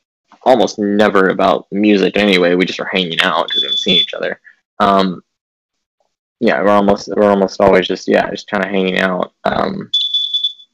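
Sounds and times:
speech: 0:00.4 - 0:05.3, 0:06.4 - 0:10.0
high-pitched electronic beep from a home security door and window chime: 0:03.2 - 0:04.2, 0:09.9 - 0:10.7.

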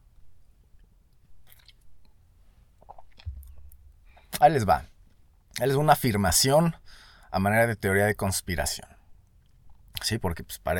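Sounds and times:
sipping and slurping coffee: 0:01.4 - 0:01.8, 0:02.8 - 0:03.6
speech: 0:04.4 - 0:04.9, 0:05.6 - 0:09.0, 0:10.0 - 0:10.7.

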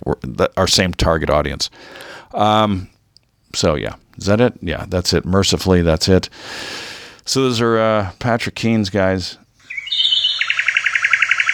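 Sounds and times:
speech: 0:00.0 - 0:02.9, 0:03.5 - 0:09.4
bird chirp sound effect: 0:09.7 - 0:11.5.

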